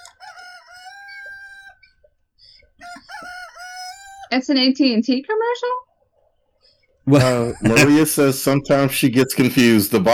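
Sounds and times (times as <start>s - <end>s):
rooster crowing loudly with strained cock-a-doodle-doo calls: 0.0s - 2.0s, 2.7s - 4.4s
speech: 4.3s - 5.7s, 7.1s - 10.1s
laughter: 7.1s - 10.1s.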